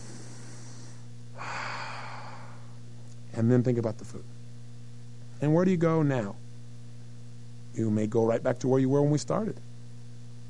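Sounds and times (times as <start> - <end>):
deep breath in: 0.0 - 2.8
faint steady low hum: 0.0 - 10.4
speech: 3.4 - 4.4, 5.4 - 6.4, 7.8 - 9.7.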